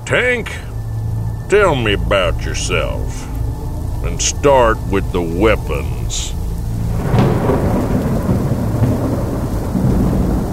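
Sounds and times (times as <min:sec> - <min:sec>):
deep thunder rumbling: 0:00.0 - 0:10.5
heavy rain: 0:00.0 - 0:10.5
speech: 0:00.1 - 0:00.7, 0:01.5 - 0:03.3, 0:04.0 - 0:06.4.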